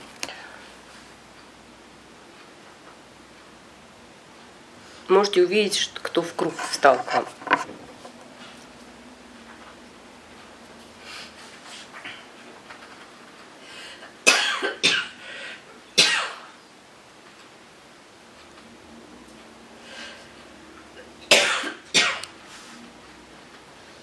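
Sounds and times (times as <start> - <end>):
speech: 5.1 - 7.4
several people coughing: 14.3 - 15.1, 21.3 - 22.2.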